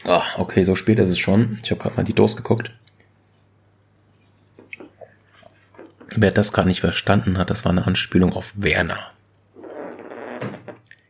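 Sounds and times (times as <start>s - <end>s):
speech: 0.0s - 2.9s, 6.1s - 9.1s
chair squeaking as someone shifts on it: 9.6s - 10.8s.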